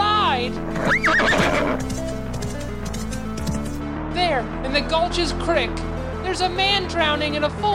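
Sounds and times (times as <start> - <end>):
horse hooves clip-clopping down a gulch: 0.6 - 3.8
horse whinnying loudly: 0.7 - 2.1
speech: 4.7 - 7.7.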